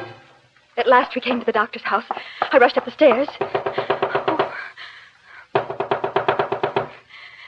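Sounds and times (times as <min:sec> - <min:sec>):
speech: 0:00.9 - 0:03.8
rapid knocking on the door of a doctor's house: 0:02.1 - 0:04.6, 0:05.5 - 0:07.0.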